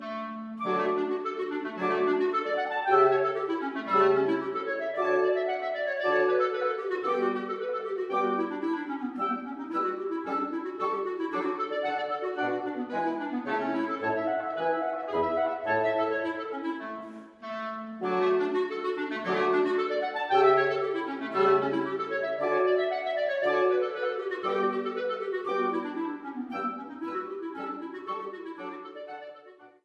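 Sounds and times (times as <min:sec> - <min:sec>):
clarinet quintet playing variations in A minor: 0:00.0 - 0:29.8.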